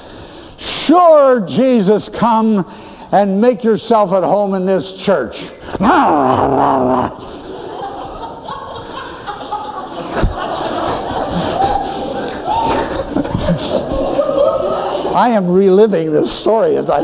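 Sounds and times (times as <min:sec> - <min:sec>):
speech: 0:00.9 - 0:07.4, 0:15.2 - 0:17.0
person imitating a dog's snarling growl: 0:05.8 - 0:07.3
laughter: 0:06.0 - 0:17.0.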